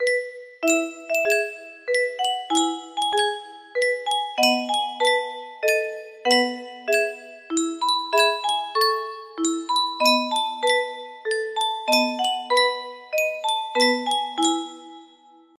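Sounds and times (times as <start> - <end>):
Yunsheng music box: 0.0 - 15.5.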